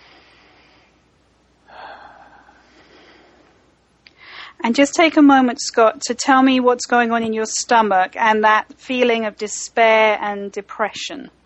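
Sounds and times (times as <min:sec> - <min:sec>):
deep breath drawn in with eyes closed during a guided relaxation exercise: 0:01.7 - 0:03.6, 0:04.2 - 0:04.6
speech: 0:04.6 - 0:11.4.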